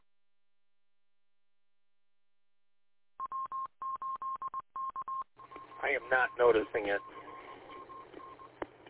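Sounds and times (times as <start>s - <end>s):
DTMF telephone keypad tones: 3.2s - 8.5s
speech: 5.9s - 7.1s.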